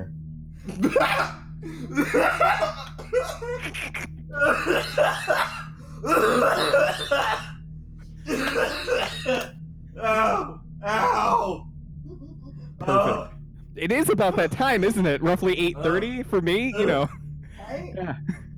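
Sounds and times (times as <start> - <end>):
steady low hum: 0.0 - 18.5
harsh coughing fit from laughing: 0.6 - 11.6, 12.8 - 13.3, 13.9 - 18.5
person laughing: 0.7 - 7.4, 12.2 - 18.5
speech: 0.8 - 7.4, 13.8 - 18.5.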